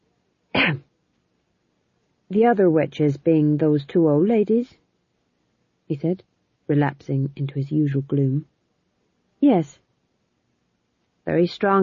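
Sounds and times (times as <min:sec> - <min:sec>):
man coughing: 0:00.6 - 0:00.8
speech: 0:00.7 - 0:00.9, 0:02.3 - 0:04.8, 0:05.9 - 0:08.5, 0:09.4 - 0:09.8, 0:11.2 - 0:11.8.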